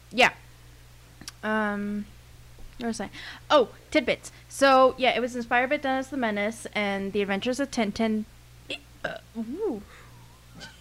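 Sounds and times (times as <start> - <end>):
speech: 0.1 - 0.4, 1.4 - 2.2, 2.8 - 10.0
small quick burps: 8.7 - 9.4, 10.6 - 10.7.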